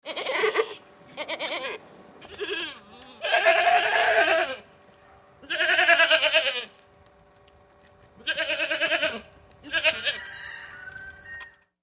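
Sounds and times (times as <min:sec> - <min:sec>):
group of goats outdoors: 0:00.0 - 0:04.7, 0:05.4 - 0:06.8, 0:08.2 - 0:10.2.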